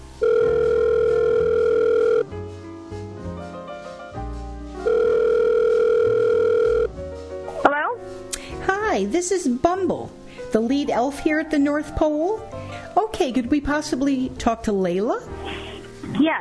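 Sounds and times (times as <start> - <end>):
quiet music: 0.0 - 16.4
phone call ringback tones: 0.2 - 2.3, 4.8 - 6.9
speech: 9.2 - 15.6.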